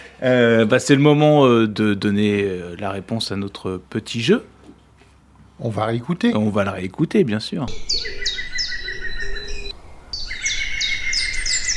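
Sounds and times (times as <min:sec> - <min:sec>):
speech: 0:00.2 - 0:04.5, 0:05.6 - 0:08.3
green woodpecker laughing call: 0:07.7 - 0:11.7.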